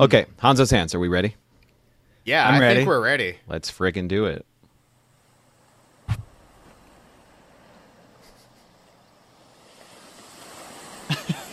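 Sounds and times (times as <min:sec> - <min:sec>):
speech: 0:00.0 - 0:01.4, 0:02.2 - 0:04.5
ocean waves washing in: 0:04.8 - 0:11.5
low thumps: 0:06.1 - 0:06.8.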